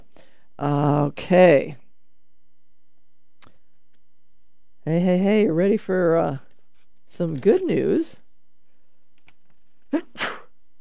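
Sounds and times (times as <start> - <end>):
speech: 0.6 - 1.8, 4.9 - 6.5, 7.1 - 8.2, 9.9 - 10.2
person sneezing: 9.9 - 10.5.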